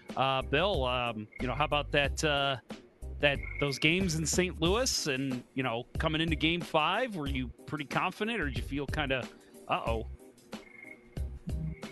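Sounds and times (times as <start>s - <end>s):
speech: 0.2s - 10.1s
tree frogs croaking through open window: 1.3s - 1.5s, 3.4s - 3.7s, 10.6s - 11.1s.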